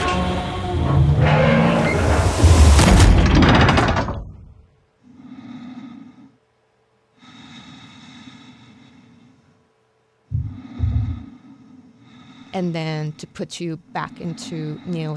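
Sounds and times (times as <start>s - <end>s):
heavy old door slamming shut: 0.0s - 4.5s
slow heavy breathing: 5.0s - 6.5s, 7.1s - 9.7s, 10.3s - 13.3s, 14.0s - 15.1s
speech: 12.6s - 15.1s.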